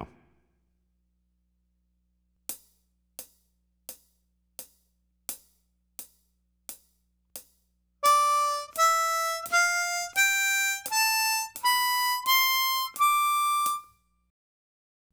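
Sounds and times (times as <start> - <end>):
jazz and pop harmonica: 8.1 - 13.9.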